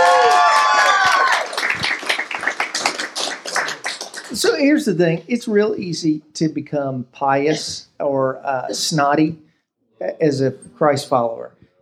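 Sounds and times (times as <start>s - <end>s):
raised voice or cheer: 0.0s - 1.6s
audience applause: 0.0s - 4.4s
speech: 4.6s - 9.4s, 10.0s - 11.6s.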